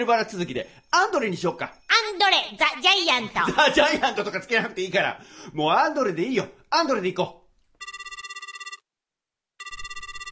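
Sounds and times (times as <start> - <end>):
speech: 0.0 - 7.9
telephone ringing with bright trilling electronic tone: 7.8 - 8.9, 9.6 - 10.3.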